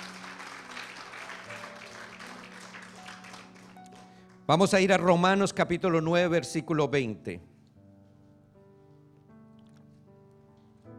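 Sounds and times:
congregation applauding during a church service: 0:00.0 - 0:05.1
speech: 0:04.5 - 0:07.5.

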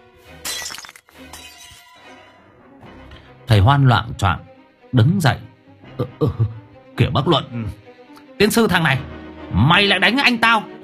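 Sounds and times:
bowl shattering with clinking fragments: 0:00.4 - 0:02.2
speech: 0:03.6 - 0:07.8, 0:08.4 - 0:10.8.

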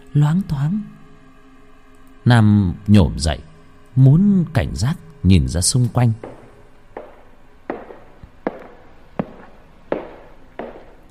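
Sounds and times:
speech: 0:00.1 - 0:01.0, 0:02.3 - 0:06.3
footsteps walking toward a room door: 0:06.2 - 0:11.1.

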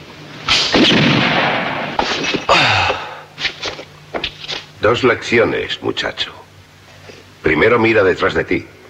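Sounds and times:
gunshots in a gunfight: 0:00.5 - 0:02.3
speech: 0:04.8 - 0:06.4, 0:07.4 - 0:08.8.

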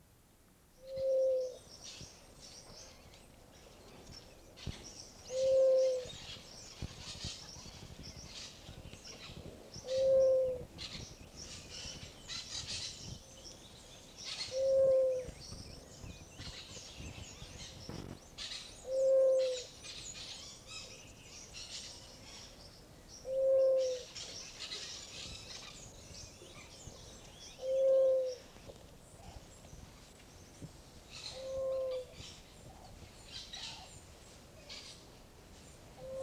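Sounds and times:
dove cooing by a stream: 0:00.9 - 0:01.6, 0:05.3 - 0:06.2, 0:09.9 - 0:10.7, 0:14.5 - 0:15.4, 0:18.9 - 0:19.7, 0:23.3 - 0:24.1, 0:27.6 - 0:28.4, 0:36.0 - 0:36.2.

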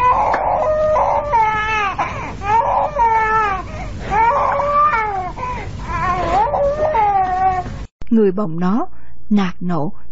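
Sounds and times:
infant crying: 0:00.0 - 0:07.7
speech: 0:08.2 - 0:10.0.

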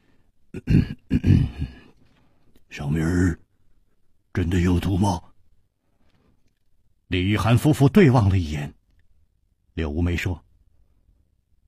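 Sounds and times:
soft throaty coughs from a person clearing their throat: 0:00.5 - 0:01.9
speech: 0:00.6 - 0:01.8, 0:02.7 - 0:03.4, 0:04.4 - 0:05.3, 0:07.1 - 0:08.8, 0:09.8 - 0:10.4.

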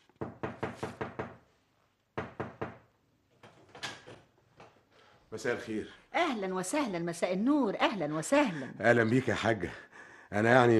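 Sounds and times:
knocking on a house door: 0:00.2 - 0:01.4, 0:02.2 - 0:02.9
speech: 0:05.4 - 0:10.7.

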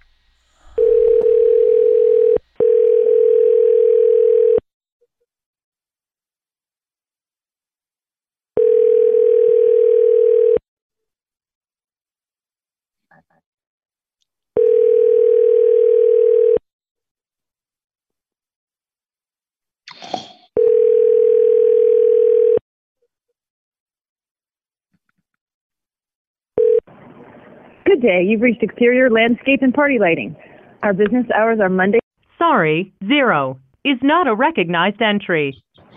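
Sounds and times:
ringback tone on an outgoing phone call: 0:00.7 - 0:04.6, 0:08.6 - 0:10.6, 0:14.6 - 0:16.6, 0:20.6 - 0:22.6, 0:26.6 - 0:26.8
speech: 0:28.0 - 0:35.6.

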